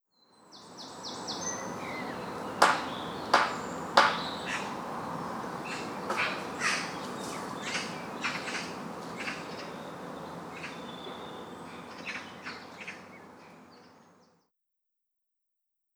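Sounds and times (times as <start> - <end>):
jungle ambience: 0.5 - 14.4
knocking on wood: 2.6 - 4.2.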